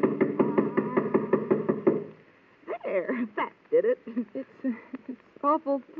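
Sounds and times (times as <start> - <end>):
rapid steady knocking on a door: 0.0 - 2.1
speech: 3.0 - 5.9.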